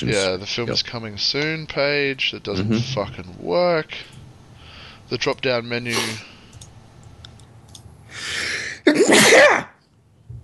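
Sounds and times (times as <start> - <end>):
speech: 0.0 - 4.2, 5.1 - 6.3
person sneezing: 5.9 - 6.2, 8.7 - 9.8.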